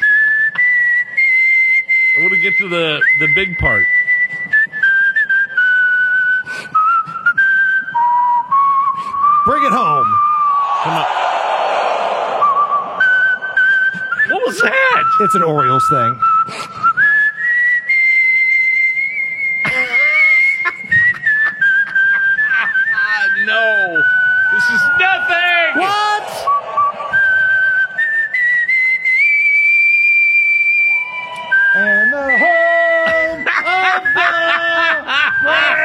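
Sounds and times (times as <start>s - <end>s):
person whistling a tune: 0.0s - 11.1s, 12.4s - 35.8s
speech: 2.2s - 4.0s, 15.2s - 16.8s
voices and crowd noise: 10.6s - 16.2s, 24.5s - 28.3s
laughter: 19.6s - 23.0s, 33.0s - 35.8s.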